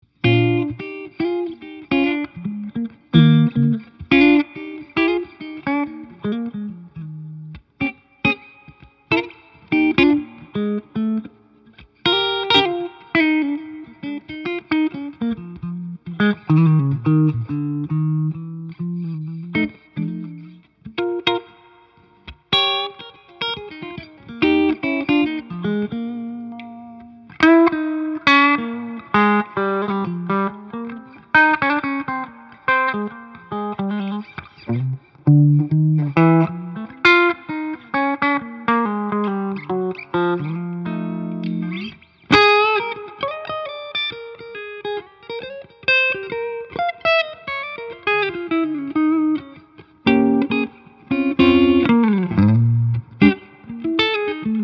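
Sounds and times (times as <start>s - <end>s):
Collings I-35 semi-hollow maple mahogany electric guitar playing: 0.0s - 54.6s.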